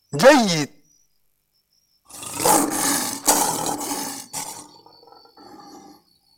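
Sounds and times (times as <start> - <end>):
speech: 0.1 - 0.8
lion roaring: 2.1 - 6.0.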